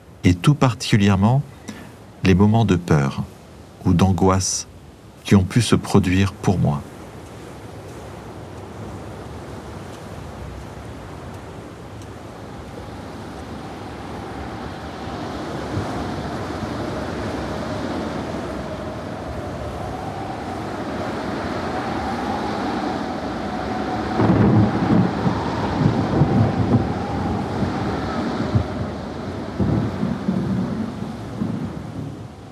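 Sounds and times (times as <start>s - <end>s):
constant wind in a storm at sea: 0.0s - 32.5s
crashing waves in a storm: 0.0s - 32.5s
speech: 0.2s - 1.5s, 2.2s - 6.9s
heavy rumbles of thunder: 12.6s - 32.5s.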